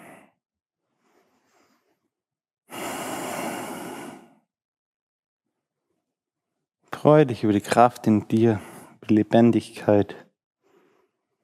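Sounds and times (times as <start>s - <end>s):
slow relaxed breathing during a relaxation exercise: 0.0s - 4.5s, 8.4s - 9.0s, 10.6s - 11.4s
speech: 7.0s - 10.2s.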